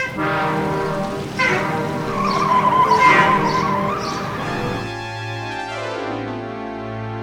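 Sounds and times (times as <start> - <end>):
semi truck tires skidding while swerving: 0.0 - 5.5.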